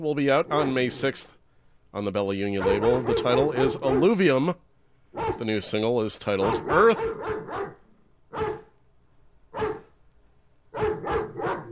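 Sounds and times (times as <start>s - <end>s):
speech: 0.0s - 4.6s, 5.2s - 8.4s
dog barking: 2.6s - 4.3s, 5.1s - 5.6s, 6.4s - 8.8s, 9.5s - 9.9s, 10.7s - 11.7s.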